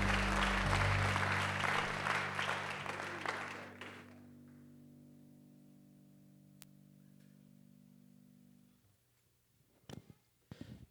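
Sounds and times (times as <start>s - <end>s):
sustained organ-like keyboard chords: 0.0s - 4.0s
church audience clapping in praise: 0.0s - 4.2s.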